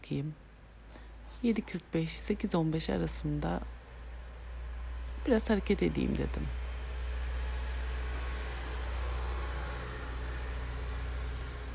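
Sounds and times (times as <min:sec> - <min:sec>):
speech: 0:00.0 - 0:00.5, 0:01.4 - 0:03.8, 0:05.2 - 0:06.6
constant broadband hiss: 0:00.0 - 0:07.2
car going by outside heard from indoors: 0:03.8 - 0:11.7.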